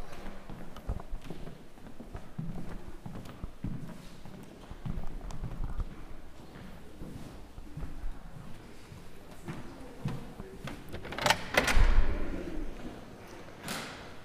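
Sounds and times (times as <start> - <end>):
faint ambience: 0.0 - 14.2
heavy double doors opening together: 10.5 - 14.2.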